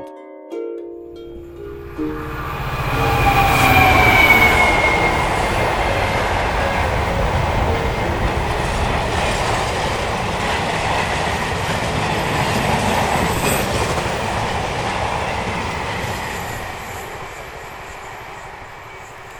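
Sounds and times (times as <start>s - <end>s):
train rumbling past a railway crossing at Fenham Hill on a foggy day: 1.2s - 19.3s
metallic squeal of train wheels on rails: 1.4s - 8.0s.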